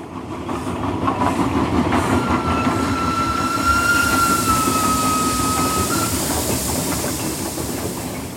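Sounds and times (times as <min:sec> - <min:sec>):
Israel Railways Valley Train rumbling along railway tracks between Haifa and Beit She'an: 0:00.0 - 0:08.3
thin high-pitched train wheel squeal: 0:01.7 - 0:08.3.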